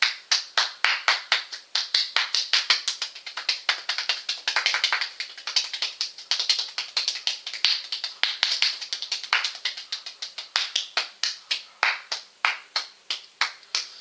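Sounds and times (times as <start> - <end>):
hands clapping: 0.0 - 13.9.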